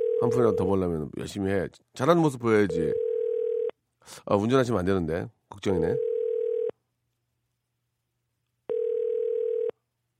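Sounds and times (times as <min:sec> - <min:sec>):
speech: 0:00.2 - 0:03.0, 0:04.0 - 0:06.1
telephone ringback tone while placing a call: 0:02.7 - 0:03.7, 0:06.0 - 0:06.7, 0:08.7 - 0:09.8.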